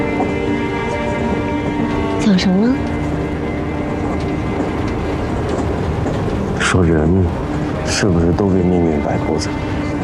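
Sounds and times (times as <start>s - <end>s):
train rolling on rails heard from inside the carriage: 0.0s - 10.0s
speech: 2.3s - 3.0s, 6.7s - 9.8s.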